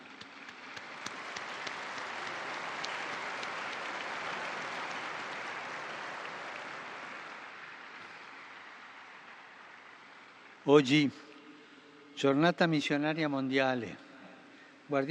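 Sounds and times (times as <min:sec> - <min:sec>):
large crowd applauding: 0:00.0 - 0:09.6
speech: 0:10.6 - 0:11.3, 0:12.2 - 0:14.0, 0:14.9 - 0:15.0.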